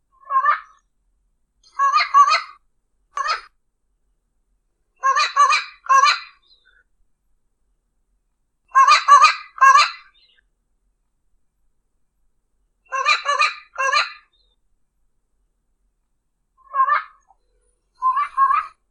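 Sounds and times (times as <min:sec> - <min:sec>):
Papagaio Campeiro parrot calling: 0:00.2 - 0:00.8, 0:01.6 - 0:02.6, 0:03.2 - 0:03.5, 0:05.0 - 0:06.8, 0:08.7 - 0:10.4, 0:12.9 - 0:14.6, 0:16.6 - 0:18.9.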